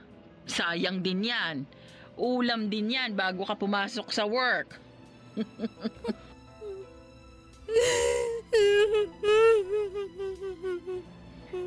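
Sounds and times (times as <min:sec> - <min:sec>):
speech: 0:00.5 - 0:04.8, 0:05.4 - 0:06.3, 0:07.7 - 0:11.6
laughter: 0:05.4 - 0:06.3
person whimpering and crying: 0:05.4 - 0:06.9, 0:07.7 - 0:11.6.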